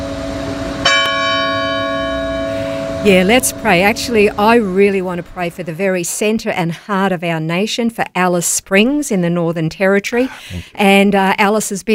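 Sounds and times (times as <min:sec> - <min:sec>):
church bell ringing with a sharp strike: 0:00.0 - 0:05.8
speech: 0:03.0 - 0:11.9.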